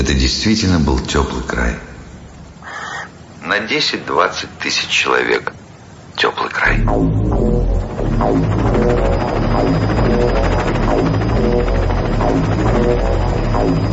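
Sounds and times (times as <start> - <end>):
speech: 0.0 - 1.9, 3.5 - 5.5, 6.2 - 7.5, 8.2 - 11.2, 12.2 - 13.9
helicopter rotor circling over a small town: 6.7 - 13.9.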